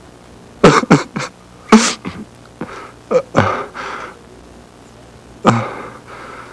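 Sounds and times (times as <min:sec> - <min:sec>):
person crying: 0:00.6 - 0:03.8, 0:05.4 - 0:06.0.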